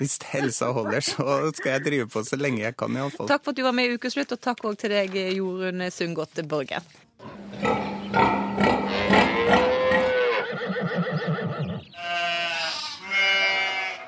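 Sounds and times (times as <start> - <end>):
speech: 0.0 - 7.9
laughter: 0.2 - 2.0, 2.8 - 3.3
farm animals bleating: 1.4 - 2.0, 7.2 - 14.0.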